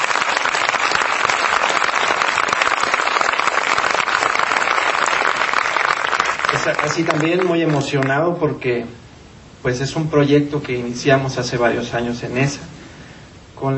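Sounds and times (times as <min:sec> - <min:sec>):
crowd applauding: 0:00.0 - 0:08.2
speech: 0:06.6 - 0:09.0, 0:09.6 - 0:12.7, 0:13.6 - 0:13.7.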